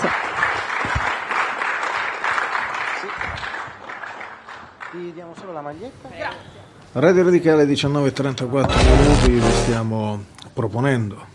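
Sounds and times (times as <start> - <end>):
audience applause: 0.0 - 4.6
speech: 5.0 - 11.3.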